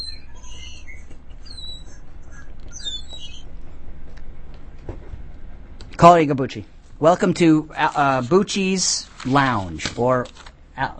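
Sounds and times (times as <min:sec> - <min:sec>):
birds chirping: 0:00.0 - 0:03.8
speech: 0:06.0 - 0:10.9.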